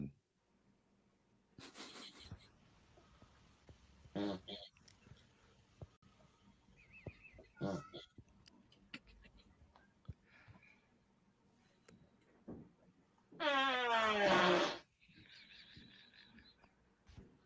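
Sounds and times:
farting played as alarm clock: 0:04.1 - 0:04.6, 0:13.4 - 0:14.9.

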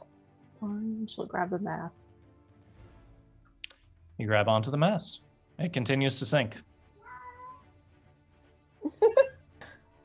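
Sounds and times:
speech: 0:00.6 - 0:02.2, 0:04.2 - 0:06.7
cat meowing: 0:07.0 - 0:07.7
laughter: 0:08.8 - 0:09.4.

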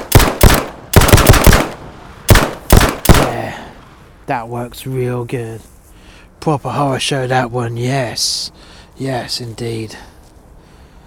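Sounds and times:
automatic gunfire from a hand switched into gun mode being test-fired: 0:00.0 - 0:03.4
speech: 0:04.3 - 0:05.7, 0:06.4 - 0:10.1.

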